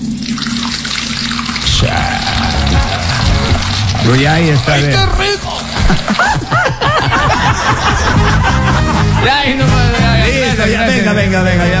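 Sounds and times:
water pouring in a steady stream and splashing: 0.0s - 6.8s
laughter: 1.8s - 11.2s
speech: 4.1s - 11.7s.

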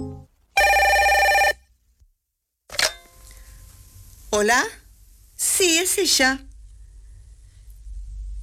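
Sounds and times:
telephone ringing in electronic trilling tones: 0.6s - 1.7s
speech: 4.3s - 4.8s, 5.4s - 6.5s.

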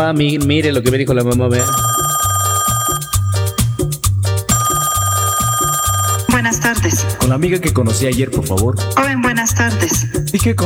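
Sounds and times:
speech: 0.0s - 2.0s, 6.4s - 10.6s
telephone ringing: 1.6s - 7.4s.

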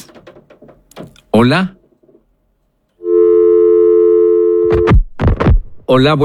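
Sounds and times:
speech: 1.4s - 1.8s, 5.9s - 6.2s
phone line tone as a call drops: 3.0s - 4.9s.

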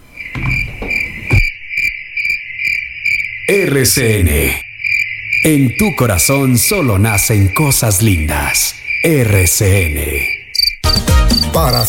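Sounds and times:
cricket chirping: 0.0s - 11.8s
dull low thuds: 0.3s - 1.5s
speech: 3.5s - 4.6s, 5.4s - 10.4s, 11.6s - 11.8s.

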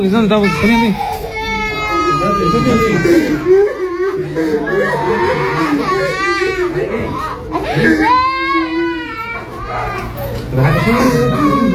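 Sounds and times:
speech: 0.0s - 1.1s, 2.1s - 8.4s, 10.5s - 11.6s
wailing lament of a gargoyle: 0.4s - 11.7s
laughter: 1.1s - 11.7s.

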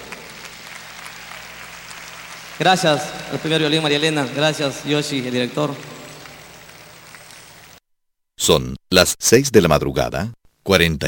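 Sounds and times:
audience applause for musicians: 0.0s - 7.8s
speech: 2.6s - 5.9s, 8.5s - 11.0s.

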